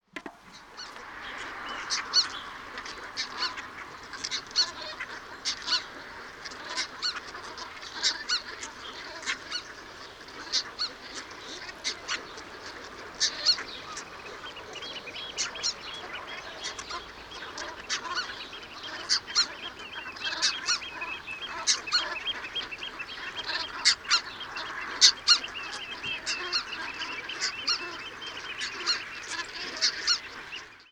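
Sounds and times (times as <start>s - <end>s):
red-breasted goose calling: 0.8s - 30.8s.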